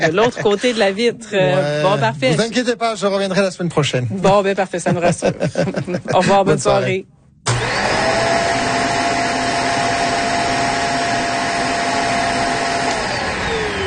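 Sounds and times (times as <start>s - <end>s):
laughter: 0.0s - 1.0s, 4.8s - 6.9s
speech: 0.0s - 7.6s
vacuum cleaner running: 7.5s - 13.8s.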